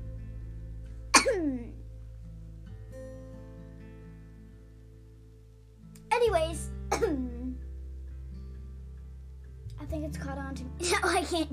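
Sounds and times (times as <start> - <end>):
low steady hum: 0.0 - 11.5
forced fake cough: 1.2 - 1.7, 6.9 - 7.2
speech: 1.3 - 1.8, 6.2 - 7.3, 9.9 - 11.5.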